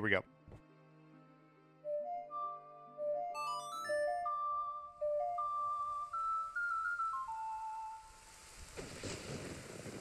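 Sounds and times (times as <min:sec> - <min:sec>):
speech: 0:00.0 - 0:00.4
lilting ocarina melody of clear breathy notes: 0:00.8 - 0:08.6
steady hiss of rain sound effect: 0:05.5 - 0:09.9.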